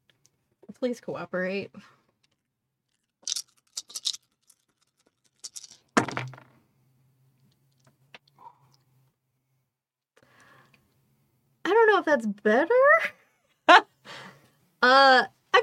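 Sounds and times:
speech: 0.8s - 2.0s, 12.0s - 13.1s, 14.9s - 15.4s
two twelve-sided plastic dice rolling on a table: 3.2s - 6.6s.

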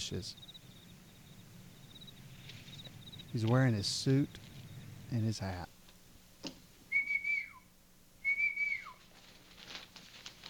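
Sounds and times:
speech: 0.0s - 0.6s, 3.3s - 4.5s, 5.1s - 5.8s
faint hum: 0.0s - 10.4s
whistle: 6.9s - 9.0s.

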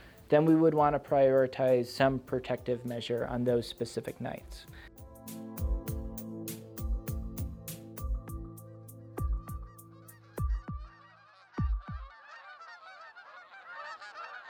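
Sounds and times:
speech: 0.3s - 4.9s
flock of geese honking: 9.3s - 14.4s.

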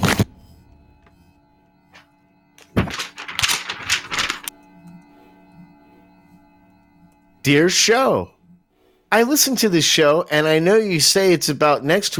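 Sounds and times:
letter paper rustling as it is drawn out of an envelope and unfolded: 1.9s - 4.5s
speech: 7.4s - 8.4s, 9.1s - 12.1s.

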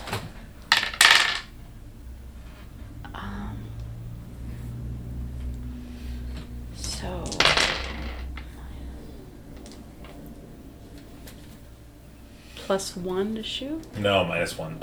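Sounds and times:
low steady hum: 0.0s - 14.8s
dice clattering across a hard tabletop: 0.7s - 1.5s, 6.8s - 8.4s
speech: 12.7s - 14.8s.

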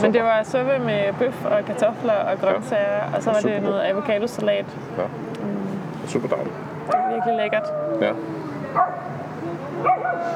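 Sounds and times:
speech: 0.0s - 5.5s, 6.1s - 10.3s
dog barking: 6.9s - 8.1s, 8.7s - 9.2s, 9.8s - 10.3s.

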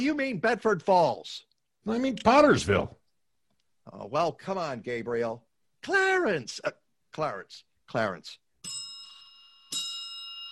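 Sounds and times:
speech: 0.0s - 3.0s, 3.9s - 8.8s
small bell ringing: 8.6s - 10.4s.

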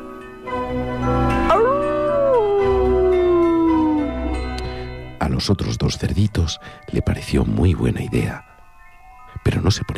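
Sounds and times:
wolf howling: 1.0s - 4.9s
speech: 5.4s - 8.5s, 9.6s - 9.9s.

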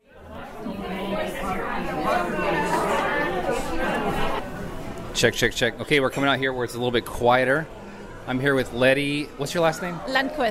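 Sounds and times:
crowd chatter of about 40 people in an Italian restaurant: 0.0s - 10.4s
speech: 5.2s - 10.4s.

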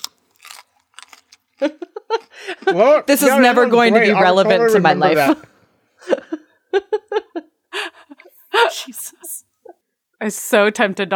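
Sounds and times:
loud crunchy chewing: 0.0s - 2.7s
laughter: 1.6s - 9.1s
speech: 2.7s - 5.5s, 10.2s - 11.1s.

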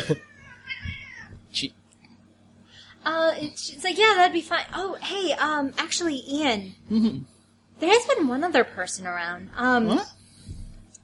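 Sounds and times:
speech: 0.0s - 0.3s, 1.5s - 1.8s, 3.0s - 10.2s
cat meowing with a wavering cry: 0.0s - 1.4s.

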